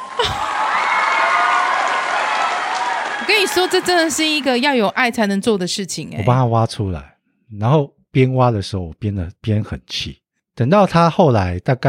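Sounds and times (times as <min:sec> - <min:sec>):
person whooping: 0:00.0 - 0:03.9
applause from a sound-effect button: 0:00.0 - 0:05.4
speech: 0:03.4 - 0:11.8.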